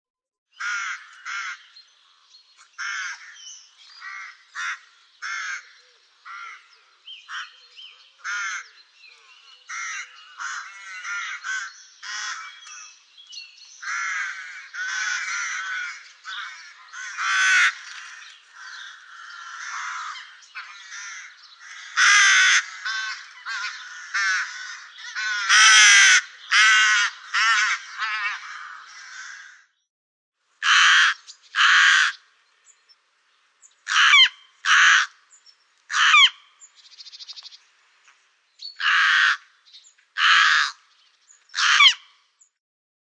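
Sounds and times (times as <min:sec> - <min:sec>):
rook calling: 0:00.6 - 0:01.8, 0:02.7 - 0:13.0, 0:13.8 - 0:29.6, 0:30.6 - 0:32.4, 0:33.8 - 0:35.2, 0:35.9 - 0:36.7, 0:38.7 - 0:39.6, 0:40.2 - 0:40.8, 0:41.5 - 0:42.1.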